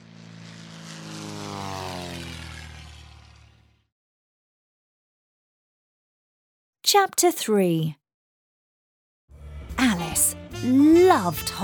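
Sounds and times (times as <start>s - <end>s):
propeller airplane engine droning: 0.0s - 3.9s
speech: 6.9s - 8.0s, 10.2s - 11.6s.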